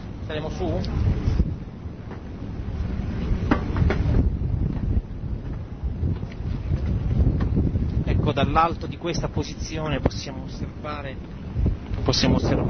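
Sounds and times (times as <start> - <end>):
strong wind roaring across an open ferry deck, buffeting the microphone: 0.0 - 12.6
speech: 0.3 - 1.4, 8.4 - 11.4, 12.0 - 12.6.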